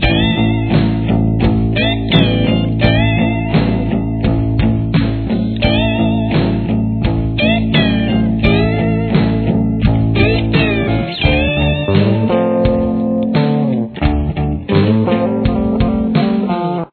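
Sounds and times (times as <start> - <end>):
solo guitar: 0.0 - 16.9.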